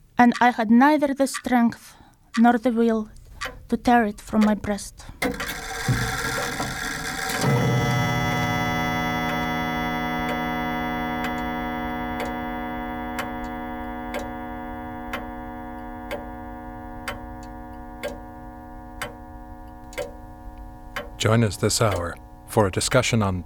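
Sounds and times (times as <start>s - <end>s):
clock ticking: 0.0s - 23.4s
speech: 0.2s - 6.1s, 21.2s - 23.4s
sustained resonant drone: 5.4s - 23.4s.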